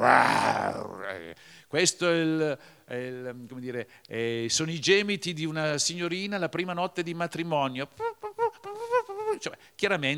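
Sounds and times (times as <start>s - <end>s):
man's voice imitating a lion's roar in a performance: 0.0s - 1.4s
speech: 0.0s - 8.3s, 9.3s - 10.1s.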